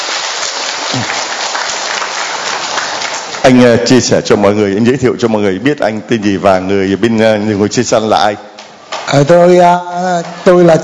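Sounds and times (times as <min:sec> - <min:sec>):
crowd clapping for the presentation of a donated wheelchair: 0:00.0 - 0:03.9
speech: 0:01.0 - 0:01.2, 0:03.4 - 0:08.5, 0:09.1 - 0:10.8.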